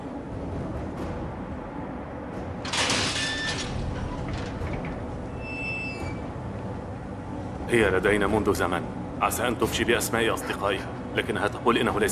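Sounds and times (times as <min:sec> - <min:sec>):
steady low rumbling background: 0:00.0 - 0:12.0
heavy door sliding open with scraping and metallic squeal: 0:02.6 - 0:06.9
high creaks of a heavy door: 0:02.8 - 0:06.7
speech: 0:07.7 - 0:12.0.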